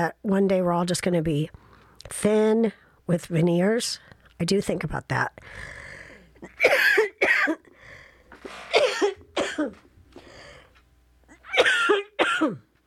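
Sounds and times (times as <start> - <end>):
speech: 0.0 - 5.8, 6.4 - 7.6, 9.6 - 9.8, 11.6 - 12.6
person coughing harshly: 6.4 - 7.7, 8.5 - 9.9, 11.3 - 12.7.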